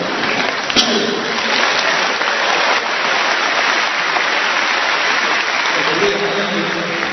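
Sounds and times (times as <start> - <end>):
large audience applauding at a live singing performance: 0.0 - 7.1.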